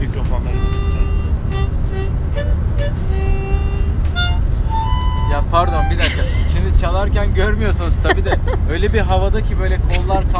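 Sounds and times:
road noise inside a moving car: 0.0s - 10.3s
speech: 0.2s - 0.8s, 5.4s - 10.3s
laughter: 5.7s - 6.8s, 7.8s - 10.3s.

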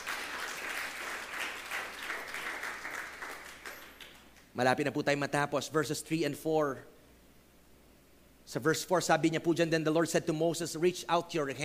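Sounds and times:
church congregation clapping during a sermon: 0.0s - 4.6s
speech: 4.6s - 6.9s, 8.5s - 11.6s.

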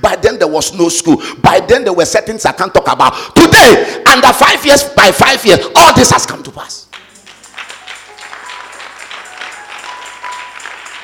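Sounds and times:
speech: 0.0s - 6.8s
audience clapping: 6.8s - 11.0s.

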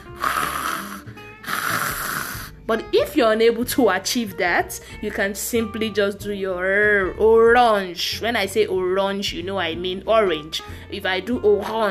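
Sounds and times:
voice making a guttural French R throat rasp: 0.0s - 2.7s
speech: 2.7s - 11.9s.

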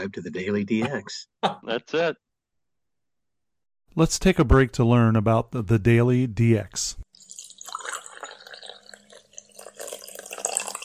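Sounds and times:
speech: 0.0s - 2.2s, 3.9s - 7.0s
coffee being poured into a cup: 7.1s - 10.8s.

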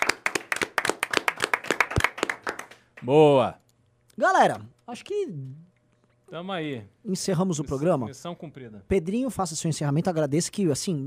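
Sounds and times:
several people clapping hands: 0.0s - 3.1s
speech: 3.0s - 3.6s, 4.2s - 5.7s, 6.3s - 11.0s.

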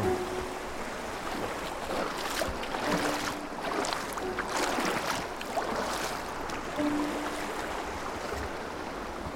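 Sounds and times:
steady rushing water of a shallow river: 0.0s - 9.3s
footsteps wading upstream through a shallow river: 1.1s - 8.4s.

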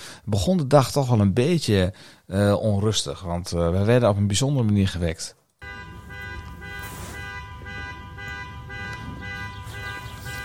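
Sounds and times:
speech: 0.2s - 5.4s
car alarm blaring: 5.6s - 10.4s.

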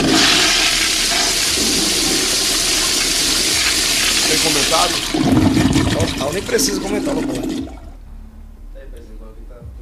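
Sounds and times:
toilet flushing with rushing water: 0.0s - 8.0s
speech: 4.8s - 5.4s, 6.0s - 7.8s.

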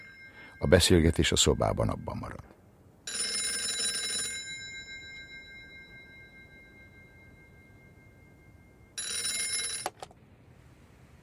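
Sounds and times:
telephone bell ringing: 0.0s - 1.2s, 3.1s - 10.1s
speech: 0.6s - 2.5s.

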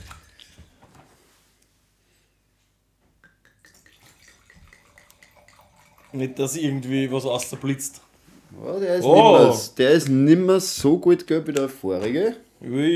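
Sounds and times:
wine pouring into a glass: 3.5s - 7.3s
speech: 6.1s - 12.9s.

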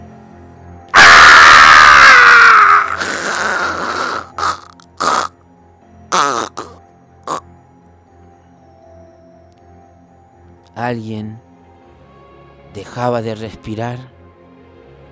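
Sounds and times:
harsh war cry scream: 1.0s - 4.7s
speech: 10.8s - 11.5s, 12.7s - 14.2s.

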